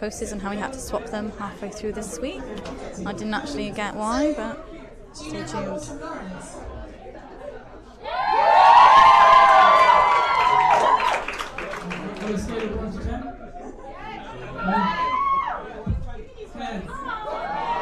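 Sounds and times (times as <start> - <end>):
speech: 0.0 - 6.8
busy overlapping crowd chatter: 0.0 - 17.7
crowd cheering: 8.0 - 12.7, 14.4 - 15.9, 16.9 - 17.7.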